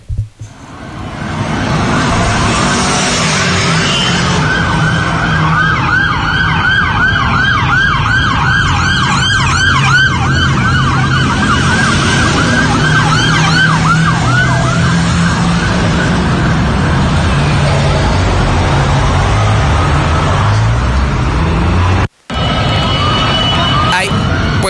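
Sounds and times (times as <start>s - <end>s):
steady rumble of traffic: 0.0s - 24.6s
police car sirens wailing as vehicles pass: 0.6s - 24.6s
indistinct voices: 23.6s - 24.6s.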